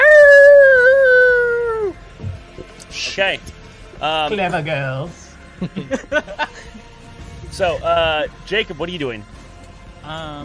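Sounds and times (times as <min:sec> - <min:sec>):
dire wolf howling: 0:00.0 - 0:02.0
speech: 0:03.2 - 0:06.8, 0:07.5 - 0:09.4, 0:10.0 - 0:10.4
laughter: 0:05.5 - 0:07.0.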